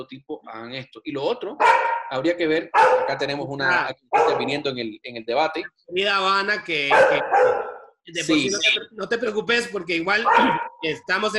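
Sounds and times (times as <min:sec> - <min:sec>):
person's voice: 0:00.0 - 0:07.5, 0:08.1 - 0:11.3
speech: 0:00.0 - 0:11.3
dog barking: 0:01.6 - 0:02.1, 0:02.7 - 0:03.3, 0:04.1 - 0:04.7, 0:06.9 - 0:07.9, 0:10.2 - 0:10.8.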